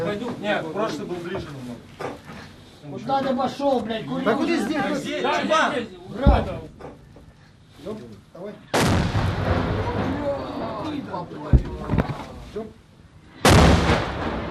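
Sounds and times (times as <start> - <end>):
speech: 0.4 - 2.2, 2.9 - 6.9, 7.8 - 8.7, 11.1 - 12.8
heavy tank cannon blasts: 8.8 - 10.5, 13.4 - 14.5.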